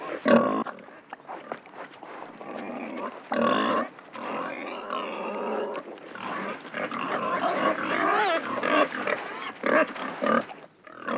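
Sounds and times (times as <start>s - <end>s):
wild boar squealing in a city: 3.0s - 11.1s.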